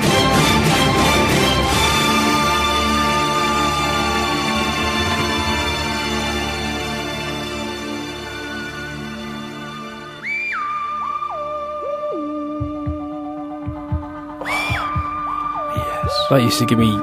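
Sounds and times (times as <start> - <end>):
eerie gliding synth tones: 0.2 - 16.4
slow deep heartbeat sound effect in a music track: 12.5 - 16.3
speech: 16.3 - 16.9.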